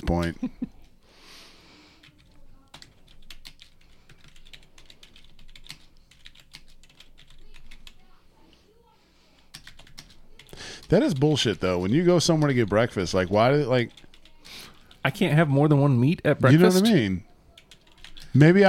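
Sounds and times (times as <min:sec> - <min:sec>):
speech: 0:00.0 - 0:00.8, 0:10.9 - 0:14.0, 0:15.0 - 0:17.3, 0:18.3 - 0:18.6
typing on a computer keyboard: 0:02.0 - 0:08.0, 0:09.4 - 0:12.9, 0:13.7 - 0:15.0, 0:17.5 - 0:18.4.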